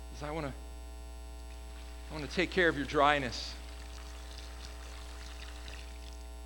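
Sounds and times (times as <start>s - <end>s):
speech: 0.2s - 0.7s, 2.1s - 3.6s
low constant electrical hum: 1.3s - 6.3s
water running and splashing: 1.4s - 6.3s.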